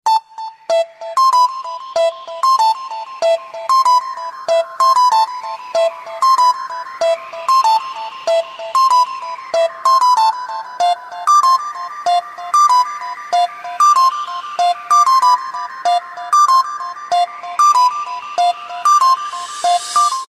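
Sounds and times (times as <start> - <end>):
light ringtone: 0.1 - 20.2.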